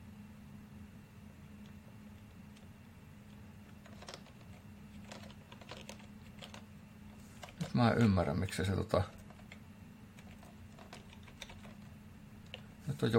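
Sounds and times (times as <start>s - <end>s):
steady low electrical hum: 0.0s - 13.1s
keyboard Alt and Shift key presses: 3.7s - 6.6s, 10.2s - 12.6s
speech: 7.8s - 9.2s, 13.0s - 13.1s.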